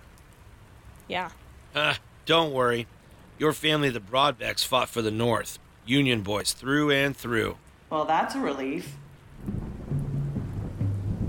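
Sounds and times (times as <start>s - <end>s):
steady rain from a storm outside at night: 0.0s - 11.2s
speech: 1.1s - 9.6s
low continuous rumble of thunder: 9.2s - 11.2s.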